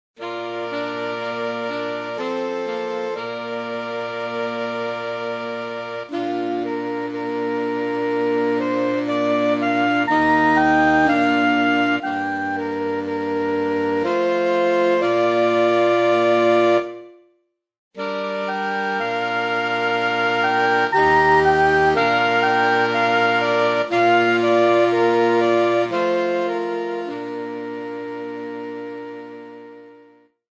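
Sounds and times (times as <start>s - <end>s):
saxophone melody: 0.2s - 17.4s, 18.0s - 30.4s.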